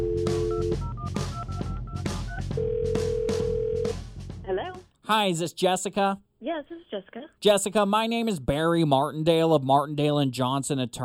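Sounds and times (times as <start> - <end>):
steady telephone line tone: 0.0 - 1.1, 2.6 - 3.9
long level telephone ringing tone: 0.0 - 1.8, 2.6 - 4.0
speech: 5.1 - 11.0.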